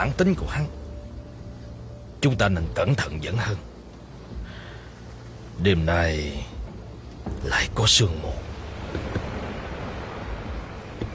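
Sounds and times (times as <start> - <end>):
speech: 0.0 - 0.8, 2.2 - 3.7, 5.6 - 6.6, 7.4 - 9.2
faint water lapping: 0.0 - 11.1
wind sweeping over open water: 3.6 - 11.1.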